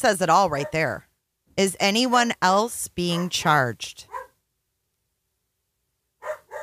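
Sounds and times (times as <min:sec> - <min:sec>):
speech: 0:00.0 - 0:04.2
dog barking excitedly: 0:04.1 - 0:04.4, 0:06.2 - 0:06.6.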